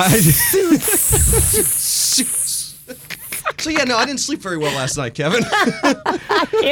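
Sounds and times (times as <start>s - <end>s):
voice murmuring in choppy bursts: 0.0s - 3.1s
snake hissing: 0.0s - 3.5s
speech: 0.0s - 6.6s.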